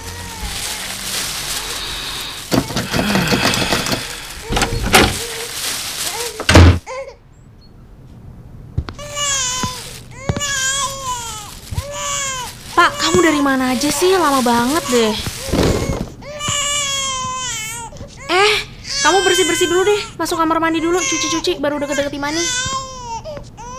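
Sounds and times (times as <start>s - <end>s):
door rattling, scraping and clunking as it is fumbled with: 2.5s - 5.4s, 6.4s - 6.8s
baby crying in rising wails: 2.5s - 7.2s, 9.0s - 13.5s, 14.2s - 23.7s
speech: 13.4s - 15.3s, 19.6s - 22.8s.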